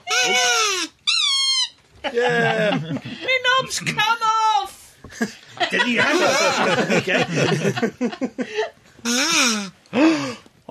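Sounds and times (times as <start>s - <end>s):
squeezed rubber ball toy squeaking: 0.0s - 1.9s, 9.0s - 9.8s
laughter: 2.0s - 3.5s, 5.1s - 8.7s
speech: 2.1s - 10.4s.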